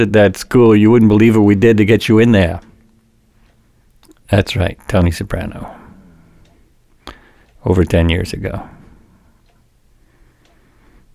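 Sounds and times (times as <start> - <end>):
speech: 0.0 - 2.7, 4.3 - 5.8, 7.6 - 8.8
clock ticking: 0.0 - 11.1
low constant hum: 0.0 - 11.1.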